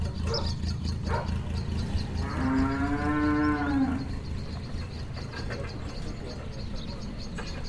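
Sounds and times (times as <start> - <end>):
animal noises on a farm: 0.0 - 7.6
low farmyard rumble: 0.0 - 7.6
cow mooing on a farm at the edge of a village: 2.1 - 4.2.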